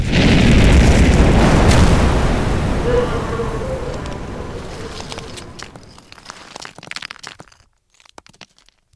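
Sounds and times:
explosion of ignited fumes: 0.0 - 6.4
scattered crackles and debris-like pops: 0.0 - 8.9.

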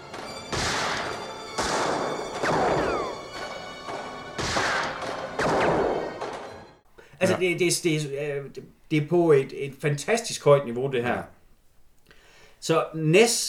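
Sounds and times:
pistol gunshots in a film scene: 0.0 - 6.6
ricochet-like whining sweeps: 0.1 - 6.5
speech: 7.2 - 11.4, 12.6 - 13.4.

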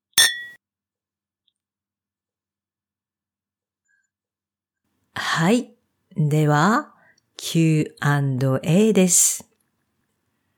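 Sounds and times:
wine glasses clinking in a toast: 0.2 - 0.6
speech: 5.4 - 9.5.

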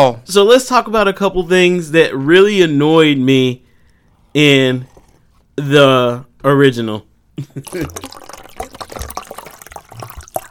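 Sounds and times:
speech: 0.0 - 3.6, 4.4 - 4.9, 5.6 - 8.3
liquid pouring into a glass: 7.6 - 10.4.

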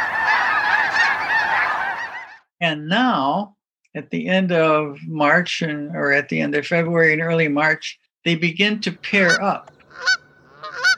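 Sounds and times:
flock of geese honking at a pond: 0.0 - 2.5, 9.0 - 10.9
speech: 2.6 - 10.2.

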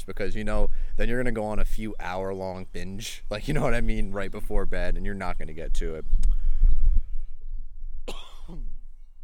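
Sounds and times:
speech: 0.0 - 6.3
low rumbling wind noise: 0.0 - 9.2
person coughing: 8.1 - 8.8.

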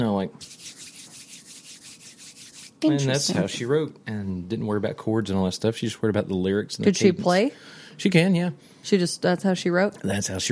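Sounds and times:
speech: 0.0 - 0.8, 2.8 - 10.4
woman rubbing her hands together to make a beat: 0.4 - 2.9.

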